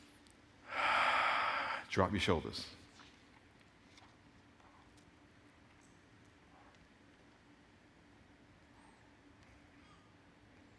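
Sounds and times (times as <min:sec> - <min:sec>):
deep breath drawn in during a guided moment of quiet prayer: 0:00.7 - 0:01.9
speech: 0:02.0 - 0:02.8.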